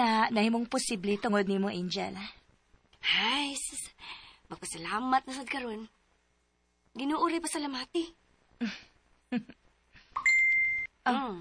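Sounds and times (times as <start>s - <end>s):
speech: 0.0s - 2.4s, 3.0s - 6.0s, 7.0s - 9.6s, 11.1s - 11.3s
cellphone text message alert high-pitched beep: 10.2s - 10.9s.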